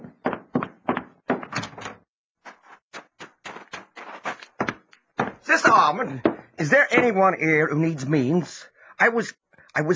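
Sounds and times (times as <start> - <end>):
wooden door thunks and rattles: 0.0 - 2.1
speech: 5.5 - 9.9.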